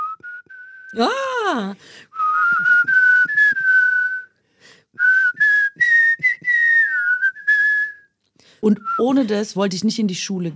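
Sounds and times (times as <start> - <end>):
two people whistling a simple melody in unison: 0.0 - 1.1, 2.1 - 4.4, 5.0 - 8.1
speech: 0.9 - 2.7, 8.6 - 10.5.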